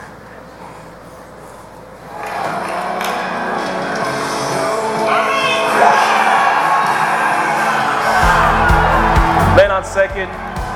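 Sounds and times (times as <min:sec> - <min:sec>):
huge baseball stadium crowd roaring and cheering after a game-winning single: 0:02.0 - 0:10.7
whoops and shouts: 0:05.1 - 0:09.5
deep booming bass: 0:08.2 - 0:09.9.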